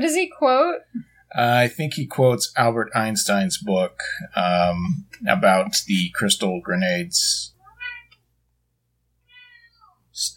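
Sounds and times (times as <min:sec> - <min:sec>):
speech: 0:00.0 - 0:07.5, 0:10.2 - 0:10.3
low steady hum: 0:00.9 - 0:07.5
cat meowing: 0:07.6 - 0:08.2, 0:09.2 - 0:10.0.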